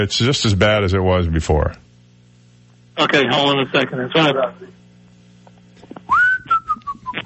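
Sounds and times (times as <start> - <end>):
speech: 0.0 - 1.9, 3.0 - 4.8
person whistling a short tune: 6.1 - 7.2.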